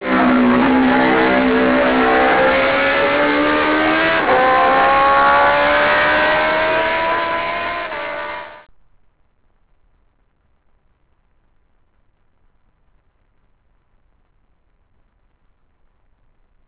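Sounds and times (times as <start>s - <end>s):
MV Agusta 750 motorcycle engine: 0.0s - 8.7s.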